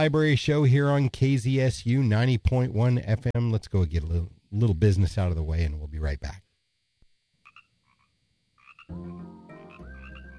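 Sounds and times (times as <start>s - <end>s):
speech: 0.0s - 6.4s, 8.9s - 9.4s
frogs croaking: 7.3s - 10.3s.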